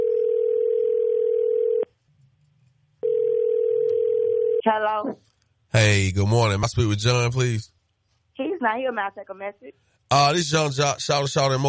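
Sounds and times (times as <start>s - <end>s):
telephone call tone as a call is being placed: 0.0s - 1.9s, 3.0s - 4.6s
speech: 4.6s - 7.8s, 8.6s - 11.6s.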